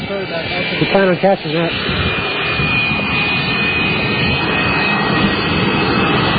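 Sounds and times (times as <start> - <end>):
jet aircraft engine roaring: 0.0 - 6.3
speech: 0.1 - 2.8.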